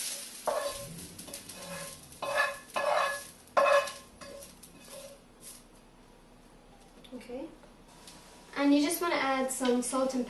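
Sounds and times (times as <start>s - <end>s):
lightly fried golden onions sizzling in a pan: 0.0s - 5.8s
speech: 8.6s - 10.2s.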